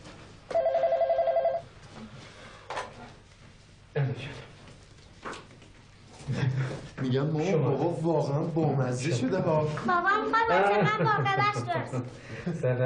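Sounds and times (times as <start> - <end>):
telephone ringing: 0.5 - 1.7
speech: 7.1 - 12.8.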